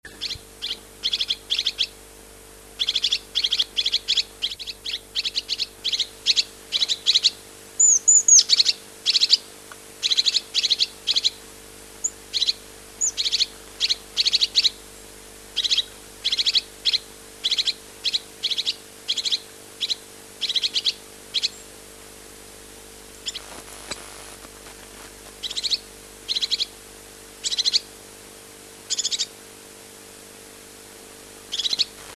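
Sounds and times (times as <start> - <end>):
Lophophanes cristatus: 0.1 - 1.9, 2.8 - 11.4, 12.0 - 14.8, 15.6 - 21.7, 23.2 - 26.8, 27.4 - 27.9, 28.9 - 29.4, 31.5 - 32.1.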